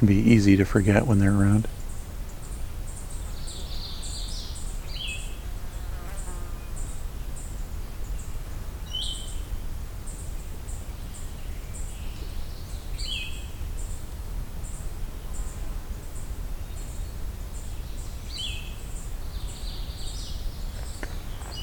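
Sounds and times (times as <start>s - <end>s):
speech: 0.0s - 1.8s
low outdoor rumble: 0.0s - 2.3s
blue-headed vireo and magnolia warbler singing: 0.0s - 14.0s, 14.6s - 21.6s.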